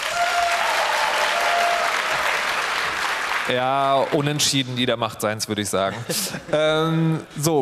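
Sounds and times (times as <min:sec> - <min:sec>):
audience applause: 0:00.0 - 0:04.5
speech: 0:03.5 - 0:07.6.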